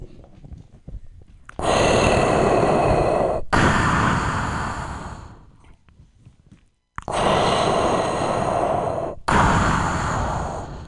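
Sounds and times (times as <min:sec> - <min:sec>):
person imitating heavy mechanical respirator breathing: 0:01.5 - 0:05.7, 0:07.0 - 0:10.8.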